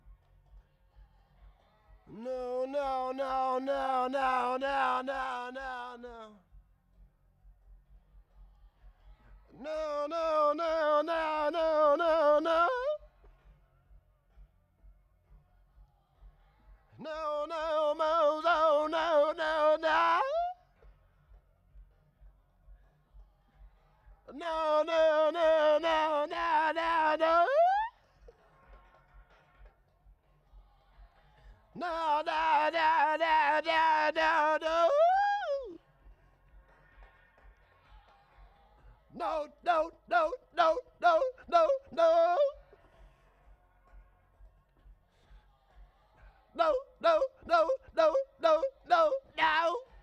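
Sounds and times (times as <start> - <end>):
person singing: 2.1 - 6.4, 9.5 - 13.0, 17.0 - 20.6, 24.3 - 27.9, 31.8 - 35.8, 39.1 - 42.6, 46.6 - 50.0.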